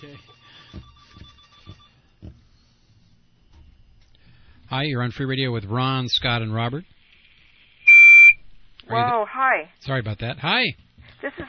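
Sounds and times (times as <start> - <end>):
telephone ringing with electronic tones: 0.0 - 2.0
speech: 4.7 - 6.9, 8.9 - 11.4.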